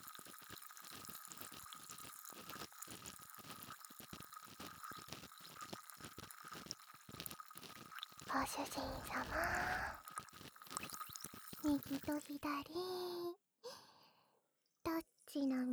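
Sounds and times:
bubbling liquid fizzing and crackling: 0:00.0 - 0:12.4
speech: 0:08.4 - 0:10.0, 0:11.6 - 0:13.4, 0:15.3 - 0:15.7.

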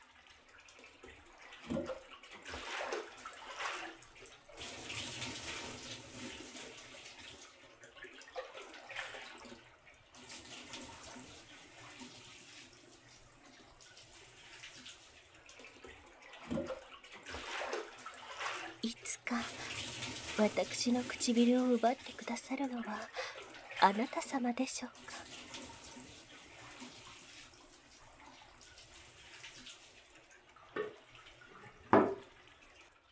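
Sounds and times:
bath water poured to rinse someone: 0:00.0 - 0:33.1
person whispering: 0:18.8 - 0:19.8, 0:20.4 - 0:25.1
speech: 0:19.3 - 0:19.6, 0:20.4 - 0:23.2, 0:23.8 - 0:25.2.

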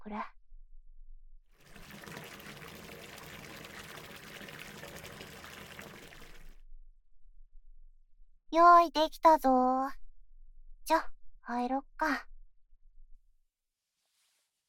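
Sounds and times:
speech: 0:00.1 - 0:00.4, 0:08.6 - 0:10.0, 0:10.9 - 0:12.3
hot water pouring into a bathtub: 0:01.6 - 0:06.6.

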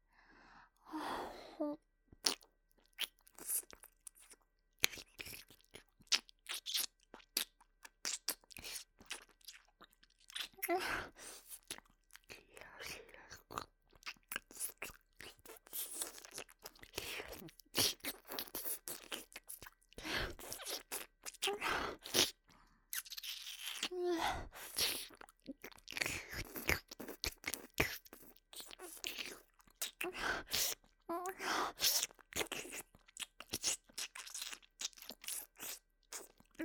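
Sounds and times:
wet crunching, chewing and smacking mouth sounds imitating eating an ear: 0:02.2 - 0:36.6.

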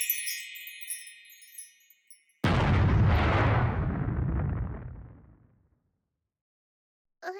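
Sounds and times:
booming explosion sound effect in a game advertisement: 0:02.5 - 0:05.5.

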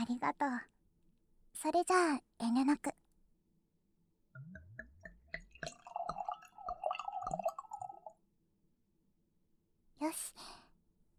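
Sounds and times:
speech: 0:00.0 - 0:00.7, 0:01.6 - 0:03.0, 0:10.0 - 0:10.5
drink glugging from a bottle into a glass: 0:04.4 - 0:08.2.

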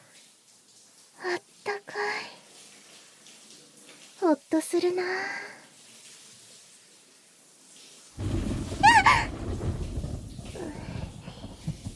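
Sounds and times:
speech: 0:04.5 - 0:05.5
thunder rumbling nearby: 0:08.2 - 0:11.9.

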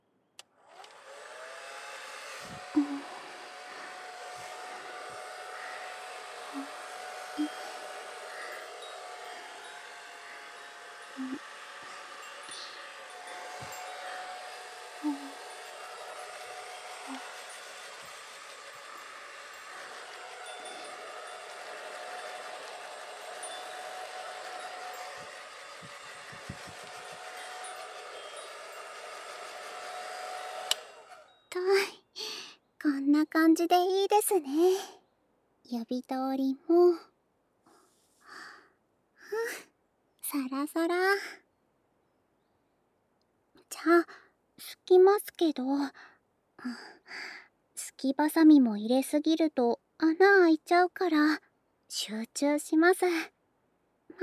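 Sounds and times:
hair dryer blowing: 0:00.4 - 0:32.4
speech: 0:02.7 - 0:03.1, 0:32.8 - 0:35.0, 0:35.7 - 0:37.1, 0:40.5 - 0:41.4, 0:44.9 - 0:47.0, 0:48.0 - 0:53.4.

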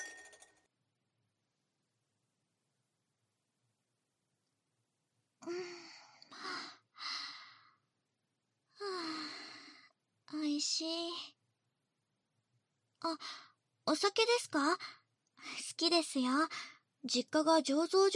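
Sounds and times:
glasses clinking in a toast: 0:00.0 - 0:00.6
breathy sighs and exhales: 0:05.4 - 0:07.8
speech: 0:10.6 - 0:11.4, 0:13.0 - 0:18.1.

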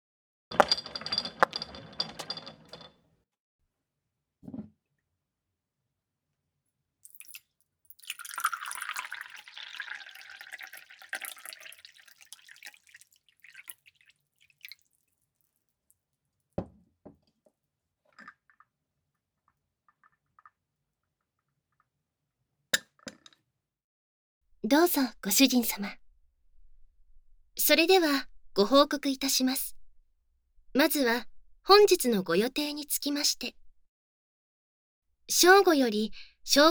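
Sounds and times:
clinks and handling while preparing tea: 0:00.5 - 0:03.0
tea trickling as it is poured: 0:07.0 - 0:15.6
faint drips and small taps of tea: 0:07.1 - 0:16.0
speech: 0:24.7 - 0:26.0, 0:27.7 - 0:29.8, 0:30.8 - 0:33.6, 0:35.3 - 0:36.6.

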